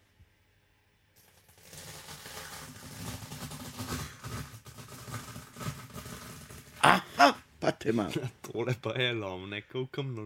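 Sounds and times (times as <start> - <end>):
cornflakes being crushed and crunched: 1.2 - 7.0
speech: 6.8 - 10.2.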